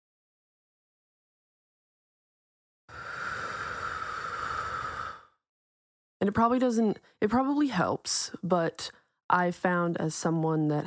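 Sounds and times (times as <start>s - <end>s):
long airy breath in through the nose and out through the mouth: 2.9s - 5.4s
speech: 6.2s - 10.8s.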